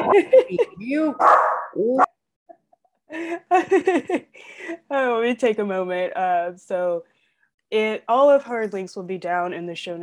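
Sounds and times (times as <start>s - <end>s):
laughter: 0.0s - 0.8s, 3.1s - 4.4s
speech: 0.1s - 2.1s, 3.1s - 7.1s, 7.7s - 10.0s
dog barking in high-pitched yapping bursts: 1.2s - 1.8s.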